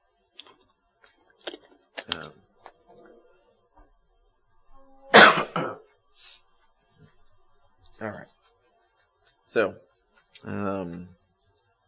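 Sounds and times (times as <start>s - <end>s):
speech: 2.1s - 2.4s, 9.5s - 11.1s
person with a lingering cough coughing harshly: 5.1s - 5.9s
throat clearing: 5.2s - 5.9s.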